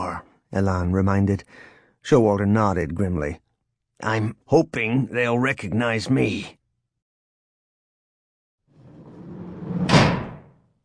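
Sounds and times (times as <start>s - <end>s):
speech: 0.5s - 3.4s, 4.0s - 6.6s
door swinging and slamming shut: 9.7s - 10.6s.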